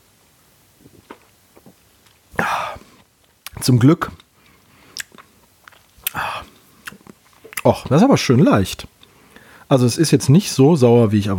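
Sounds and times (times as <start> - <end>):
quiet mouth sounds: 2.3 - 4.3, 6.0 - 9.0
faint lip clicks: 3.0 - 7.9
speech: 3.6 - 4.2, 7.6 - 8.9, 9.7 - 11.3.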